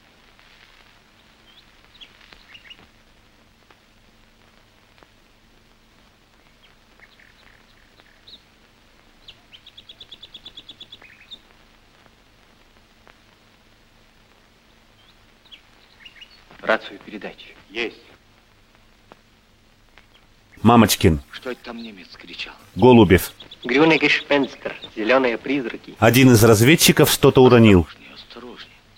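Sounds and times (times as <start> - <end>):
daytime forest ambience low hush: 0.0 - 28.9
faint bird chirps in a forest: 1.4 - 2.9, 6.6 - 8.5, 9.2 - 11.5, 14.9 - 16.6, 20.0 - 28.9
speech: 16.7 - 18.1, 20.6 - 28.0.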